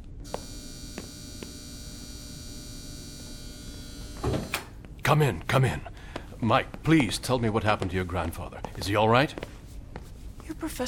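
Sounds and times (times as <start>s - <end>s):
door entry buzzer: 0.2s - 4.8s
speech: 5.1s - 9.5s, 10.6s - 10.8s.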